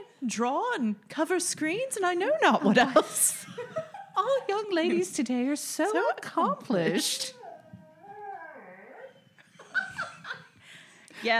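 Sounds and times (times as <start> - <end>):
speech: 0.2 - 7.4, 11.2 - 11.3
laughter: 2.6 - 5.1, 9.4 - 11.3
dog whimpering and yipping: 6.9 - 10.4.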